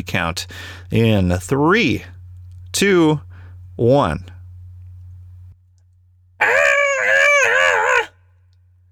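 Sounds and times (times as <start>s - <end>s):
low steady hum: 0.0s - 8.9s
speech: 0.1s - 2.2s, 2.8s - 4.4s
people screaming along together in a cathartic group scream: 6.4s - 8.2s.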